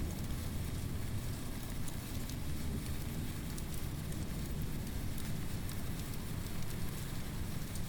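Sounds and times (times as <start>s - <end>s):
storm rain with crackling patter: 0.0s - 7.8s
storm wind with deep rumbling gusts: 0.0s - 7.8s.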